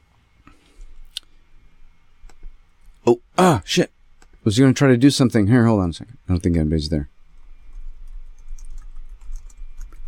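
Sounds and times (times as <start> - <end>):
low rumble: 0.8 - 10.0
speech: 3.1 - 7.2
typing on a computer keyboard: 7.4 - 10.0.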